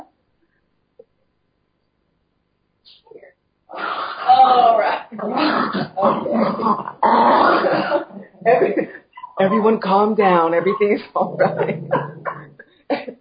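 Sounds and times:
dog whimpering and growling while being muzzled: 3.7 - 7.8, 10.6 - 12.6
speech: 5.1 - 6.9, 7.6 - 12.1
laughter: 7.5 - 13.2.

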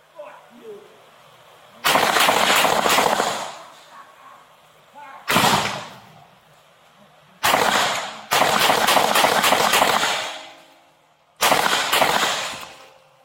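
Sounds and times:
people talking: 0.1 - 1.1, 3.7 - 5.3
gunshots fired during a police confrontation: 1.8 - 3.7, 5.3 - 6.1, 7.4 - 10.6, 11.4 - 12.8.

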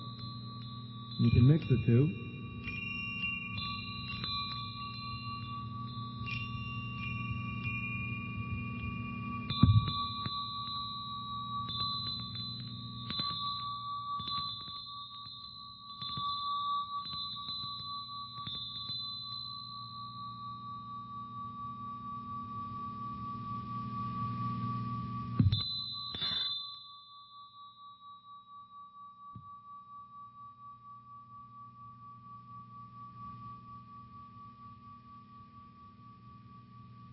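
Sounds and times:
handheld multi-metal bell ringing: 0.0 - 37.1
speech: 1.2 - 2.2.

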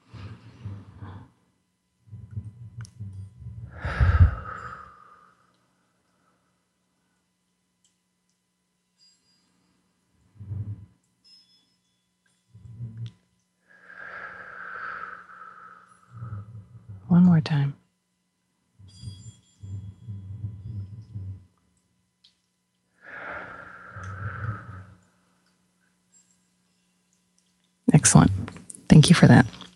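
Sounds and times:
deep breaths drawn in and slowly exhaled: 0.0 - 1.4, 2.1 - 6.4, 10.3 - 11.0, 13.7 - 17.1, 23.0 - 25.0
speech: 17.2 - 17.8, 29.1 - 29.6.

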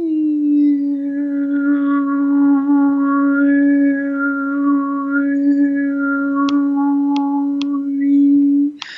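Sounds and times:
single voice overtone singing over a low drone: 0.0 - 8.9
clicks: 8.8 - 8.9.

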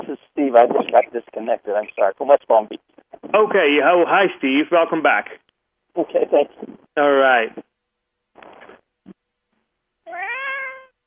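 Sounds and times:
speech: 0.5 - 5.4, 6.0 - 7.7
cat meowing long and drawn-out: 10.0 - 11.0.

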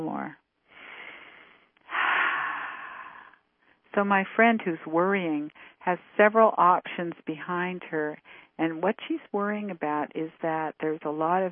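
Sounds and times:
deep breaths during a breathing exercise: 0.7 - 3.9, 5.6 - 5.8, 8.2 - 8.6
speech: 4.0 - 11.4.

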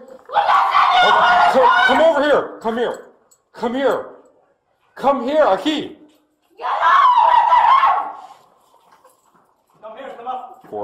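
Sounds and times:
faint noise: 0.0 - 10.8
woman screaming out a door: 0.3 - 2.0, 6.6 - 8.4
speech: 1.0 - 4.1, 5.0 - 6.0.

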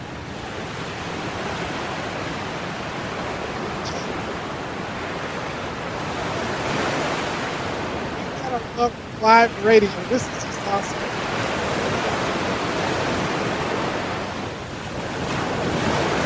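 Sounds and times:
Pacific Ocean surf breaking on the coast of Hawaii: 0.0 - 16.2
speech: 8.8 - 11.1.

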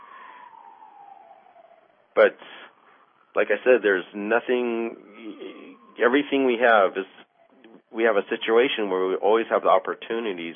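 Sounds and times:
ambulance siren wailing: 0.0 - 8.0
speech: 2.2 - 2.7, 3.4 - 7.2, 7.9 - 10.5.

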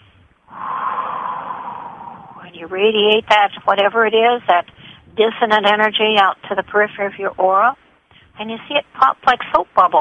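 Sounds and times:
deep breath in: 0.5 - 2.4
speech: 2.5 - 7.8, 8.4 - 10.0.

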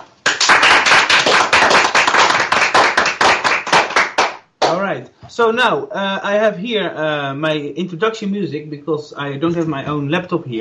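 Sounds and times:
applause from a small group: 0.0 - 4.8
speech: 4.7 - 10.5.

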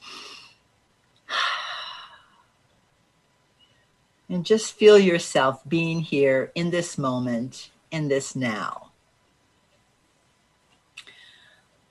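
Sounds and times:
soft airy deep breaths during a guided meditation: 0.0 - 2.6, 11.0 - 11.8
speech: 4.3 - 8.8.

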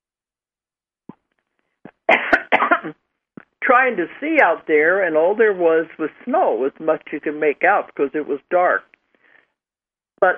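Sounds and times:
person coughing to clear the throat: 1.9 - 3.0
speech: 3.7 - 8.9, 10.2 - 10.3.

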